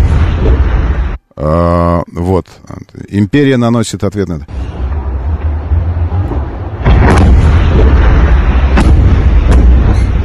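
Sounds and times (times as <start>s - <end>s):
series of deep booming explosions: 0.0s - 1.2s, 4.6s - 10.2s
low rumbling noise: 0.0s - 1.4s, 4.4s - 10.2s
speech: 1.4s - 4.7s.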